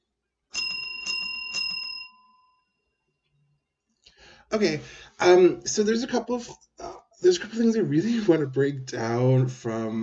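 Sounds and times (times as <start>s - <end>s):
small bell ringing with bright metallic tone: 0.5s - 3.0s
speech: 4.5s - 10.0s.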